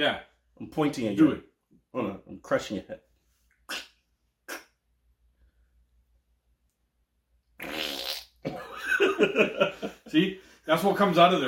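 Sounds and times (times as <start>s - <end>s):
speech: 0.0s - 3.1s, 3.7s - 3.9s, 9.2s - 11.4s
fart noises: 7.6s - 8.6s
laughter: 8.5s - 10.2s.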